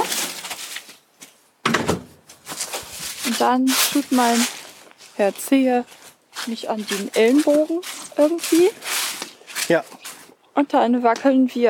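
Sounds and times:
shuffling and movement of people going outside: 0:00.0 - 0:10.4
apartment building stairwell front door thunking shut in Harburg Heimfeld: 0:01.6 - 0:02.2
speech: 0:03.3 - 0:04.6, 0:05.2 - 0:08.9, 0:09.7 - 0:10.0, 0:10.6 - 0:11.6.

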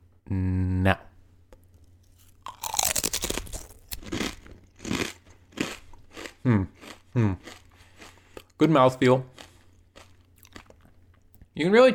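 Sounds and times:
speech: 0:00.3 - 0:01.0, 0:08.6 - 0:09.3, 0:11.6 - 0:11.9
jalapeno-flavoured potato chip being bitten and chewed: 0:02.0 - 0:11.0.

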